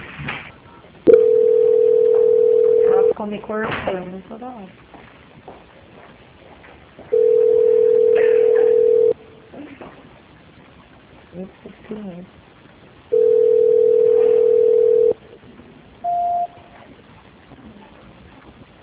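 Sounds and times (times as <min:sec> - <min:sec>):
telephone beeps during call transfer: 0:01.1 - 0:03.1, 0:07.1 - 0:09.2, 0:13.1 - 0:15.2, 0:16.0 - 0:16.6
speech: 0:03.2 - 0:04.9.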